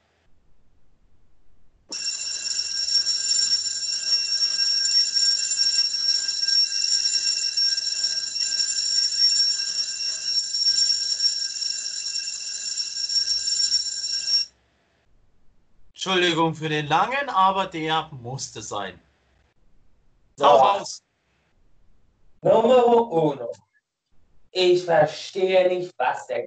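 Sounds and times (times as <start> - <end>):
loud electric bell ringing: 1.9 - 14.5
speech: 16.0 - 19.1, 20.4 - 21.1, 22.4 - 23.6, 24.5 - 26.4.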